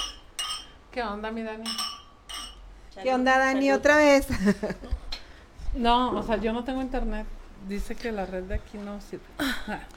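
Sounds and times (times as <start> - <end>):
glasses clinking in a toast: 0.0 - 0.8, 1.6 - 2.7
speech: 1.0 - 1.9, 2.9 - 5.0, 5.7 - 9.9.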